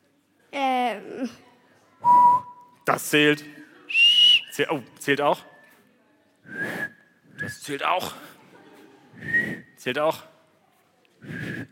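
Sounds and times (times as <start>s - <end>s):
speech: 0.5s - 1.4s, 3.0s - 3.6s, 4.6s - 5.5s, 7.5s - 8.3s, 9.8s - 10.3s
person whistling with the mouth: 2.0s - 2.7s, 3.9s - 4.6s, 6.5s - 7.6s, 9.2s - 9.8s, 11.2s - 11.7s
breath: 6.4s - 7.4s, 9.1s - 9.8s, 11.2s - 11.7s.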